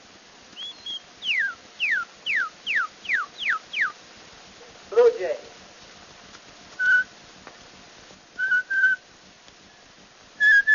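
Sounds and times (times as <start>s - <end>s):
old recording hiss: 0.0s - 10.7s
cardinal singing on an old cylinder recording: 0.5s - 4.0s, 6.8s - 7.2s, 8.4s - 9.1s, 10.4s - 10.7s.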